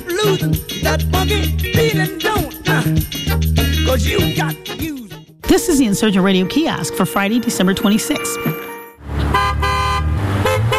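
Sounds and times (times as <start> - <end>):
speech: 0.2 - 3.2, 3.9 - 4.9, 5.5 - 8.7
car horns honking at a roadside protest outside a shopping mall: 7.2 - 10.7
low traffic rumble: 9.0 - 10.7.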